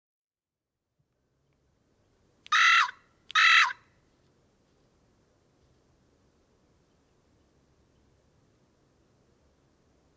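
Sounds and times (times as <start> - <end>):
carrion crow Corvus corone cawing: 2.5 - 3.8.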